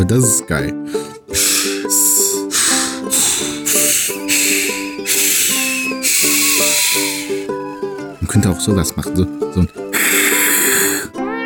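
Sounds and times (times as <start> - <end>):
speech: 0.0 - 1.5, 8.4 - 9.8
voice imitating an angry hiss: 0.9 - 7.5, 9.9 - 11.2
steady tonal humming: 1.3 - 7.5.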